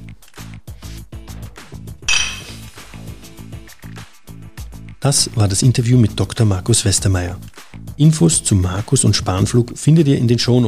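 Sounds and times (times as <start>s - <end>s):
glasses clinking together in a toast: 2.1s - 2.7s
speech: 5.0s - 10.6s.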